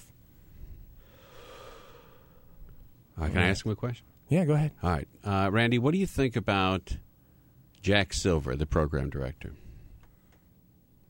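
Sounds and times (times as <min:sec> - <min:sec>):
person taking a deep breath during a relaxation exercise: 0:00.4 - 0:02.7
speech: 0:03.2 - 0:07.0, 0:07.8 - 0:09.6.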